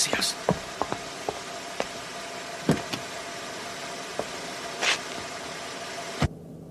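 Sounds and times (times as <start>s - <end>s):
car engine idling: 0.0s - 6.2s
car door shutting: 2.6s - 3.1s.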